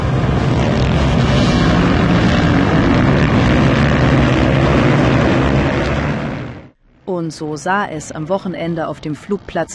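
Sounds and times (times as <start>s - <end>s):
several stunt motorcycle engines revving at a motorcycle stunt event on an airfield: 0.0s - 6.7s
speech: 7.2s - 9.7s.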